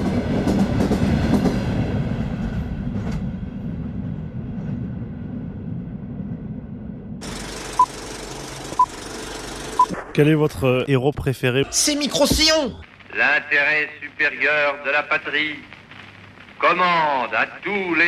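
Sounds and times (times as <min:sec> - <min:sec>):
computer-controlled locomotive pulling a convoy along rails: 0:00.0 - 0:09.9
speech: 0:10.2 - 0:15.7, 0:16.6 - 0:18.0.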